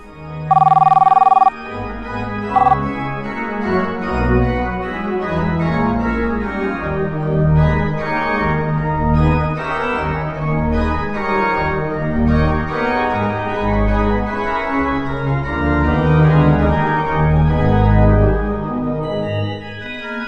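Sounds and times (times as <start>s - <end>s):
telephone ringing with buzzy electronic trill: 0.5s - 1.5s, 2.5s - 2.8s
music: 1.6s - 20.2s.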